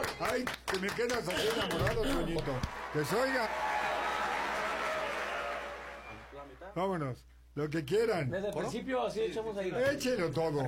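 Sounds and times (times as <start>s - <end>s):
small group of people clapping in a studio booth: 0.0s - 6.4s
speech: 0.2s - 3.7s, 6.5s - 10.6s.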